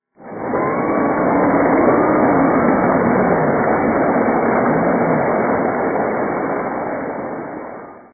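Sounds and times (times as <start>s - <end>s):
crowd applause: 0.3s - 7.8s.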